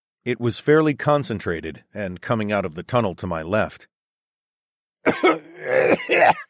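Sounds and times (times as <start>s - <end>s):
speech: 0.2s - 3.9s, 5.0s - 6.4s
person coughing in disgust, recoiling at a stench of death and decay: 5.1s - 6.4s.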